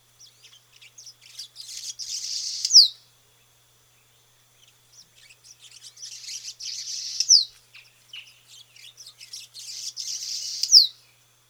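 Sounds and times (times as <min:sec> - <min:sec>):
house martin calls: 0:00.2 - 0:03.0, 0:04.6 - 0:10.9.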